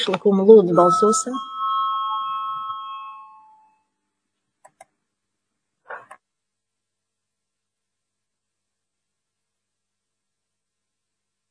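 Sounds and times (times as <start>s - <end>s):
speech: 0.0s - 1.5s
chairman's bell rung before a parliamentary vote: 0.0s - 3.9s
soft clicks: 4.6s - 5.0s.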